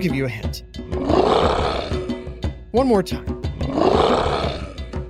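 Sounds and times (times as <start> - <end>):
speech: 0.0 - 1.6, 2.8 - 4.0
big cat roaring with rhythmic grunts: 0.9 - 2.4, 3.6 - 5.0.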